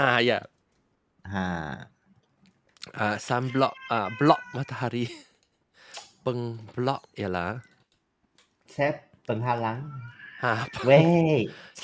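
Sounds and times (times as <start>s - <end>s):
speech: 0.0s - 0.5s, 1.2s - 1.9s, 2.9s - 5.3s, 6.2s - 7.7s, 8.7s - 11.8s
pet cat meowing: 3.3s - 5.0s, 9.5s - 11.3s.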